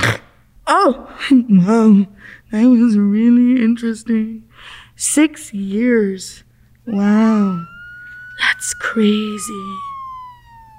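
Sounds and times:
speech: 0.8s - 7.8s, 8.4s - 9.9s
low engine rumble: 5.5s - 10.7s
emergency siren: 6.8s - 10.7s.

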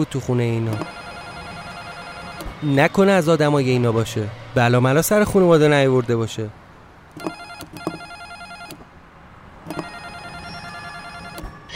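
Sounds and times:
speech: 0.0s - 1.0s, 2.6s - 6.6s
doorbell ringing in buzzing electronic bursts: 0.8s - 2.5s, 7.2s - 8.8s, 9.7s - 11.5s.

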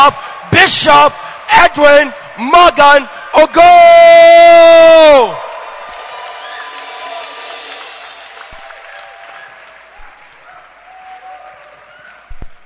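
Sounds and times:
speech: 0.0s - 5.4s
large audience shouting and cheering in a reverberant hall: 0.0s - 12.6s
clapping: 5.9s - 12.6s.

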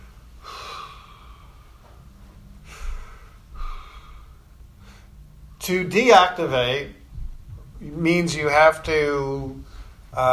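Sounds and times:
person demonstrating slow calm breathing: 0.0s - 5.6s, 9.6s - 10.2s
speech: 5.6s - 7.0s, 7.8s - 10.3s.

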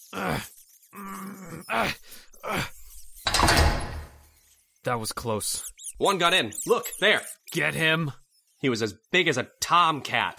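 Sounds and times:
speech: 0.1s - 0.5s, 4.9s - 10.3s
person groaning and grunting with strain: 0.1s - 2.8s
stuck door forced shut with a rough scraping thud: 3.2s - 4.3s.

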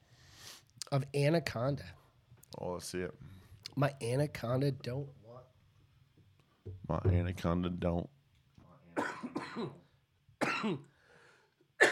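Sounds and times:
speech: 0.9s - 2.0s, 2.6s - 5.2s, 6.9s - 8.2s, 9.6s - 9.8s, 10.6s - 10.9s
harsh coughing fit: 9.0s - 10.9s, 11.8s - 11.9s.

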